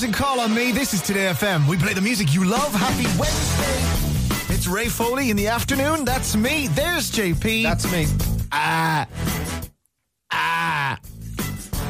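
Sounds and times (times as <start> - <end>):
speech: 0.0 - 4.0, 4.6 - 9.5
person imitating goat bleats: 8.4 - 9.1, 10.3 - 11.1.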